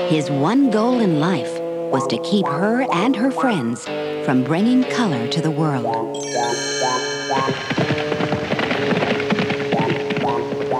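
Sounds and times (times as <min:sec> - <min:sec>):
speech: 0:00.0 - 0:08.1
horse hooves galloping: 0:06.3 - 0:10.7.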